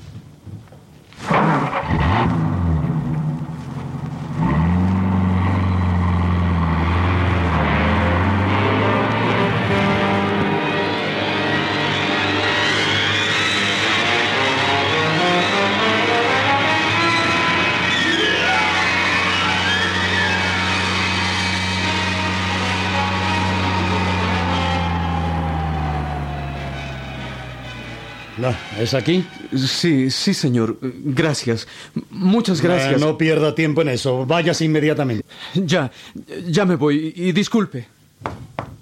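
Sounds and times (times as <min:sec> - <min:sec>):
car engine starting up and driving off: 0:01.2 - 0:28.7
speech: 0:28.5 - 0:38.4.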